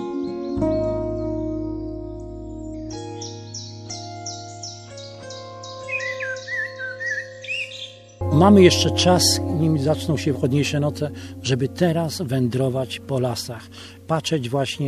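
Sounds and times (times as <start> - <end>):
wild birds chirping and whistling in a forest: 0.0 - 8.2
speech: 8.4 - 14.8.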